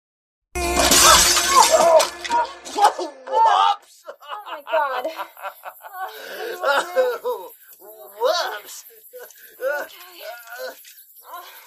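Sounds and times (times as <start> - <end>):
jangling, ringing glass shards scattering: 0.6 - 3.0
glass table shattering: 0.6 - 3.1
laughter: 0.9 - 7.5.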